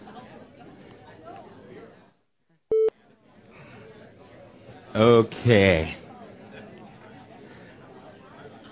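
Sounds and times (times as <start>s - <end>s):
murmur of audience members chatting with neighbours: 0.0s - 8.7s
short electronic beep: 2.7s - 2.9s
speech: 4.9s - 6.0s.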